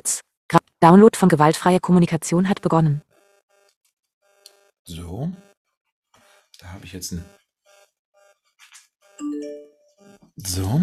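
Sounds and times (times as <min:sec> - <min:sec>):
speech: 0:00.0 - 0:00.2, 0:00.8 - 0:03.1, 0:04.9 - 0:05.5, 0:06.6 - 0:07.4, 0:09.2 - 0:10.8
electronic phone notification chime: 0:09.2 - 0:09.9.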